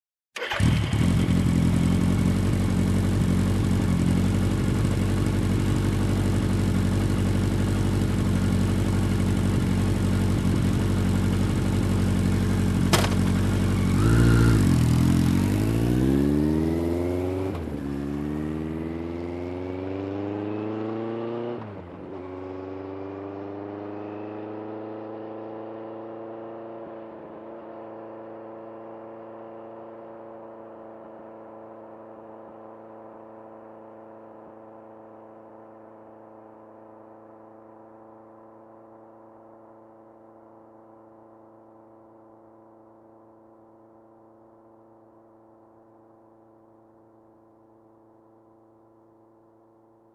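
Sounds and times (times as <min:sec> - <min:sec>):
motorcycle engine ignition: 0:00.4 - 0:18.8
motorcycle driving away: 0:00.4 - 0:42.4.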